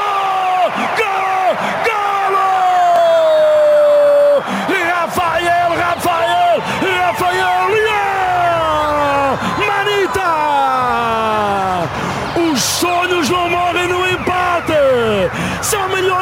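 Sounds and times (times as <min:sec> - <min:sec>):
many voices shouting and whooping: 0:00.0 - 0:16.2
stadium crowd cheering after a goal: 0:00.0 - 0:16.2.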